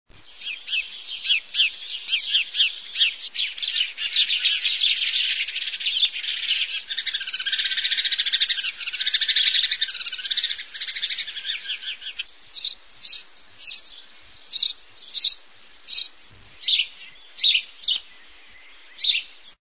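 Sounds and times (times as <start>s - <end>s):
house sparrow singing: 0.1s - 19.6s.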